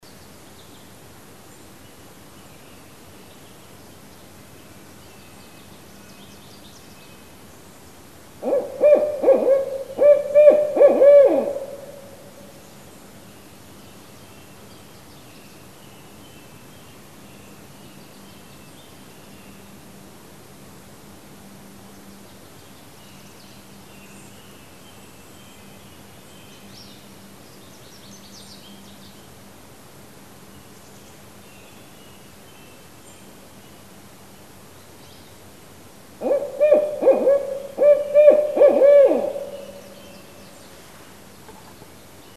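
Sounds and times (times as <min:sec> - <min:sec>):
Northern Barred Owl Strix varia calling: 0:08.4 - 0:12.2, 0:36.2 - 0:40.3.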